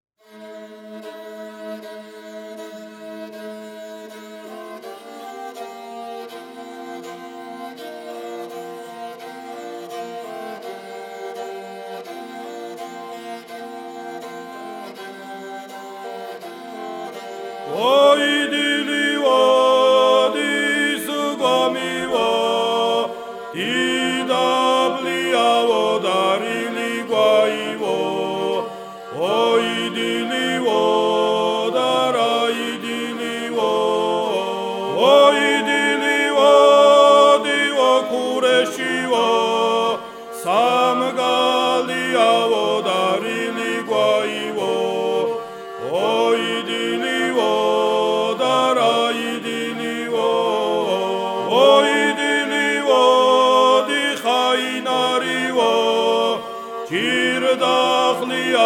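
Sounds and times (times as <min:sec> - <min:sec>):
person singing second voice of a Svan song: 0:16.7 - 0:58.6.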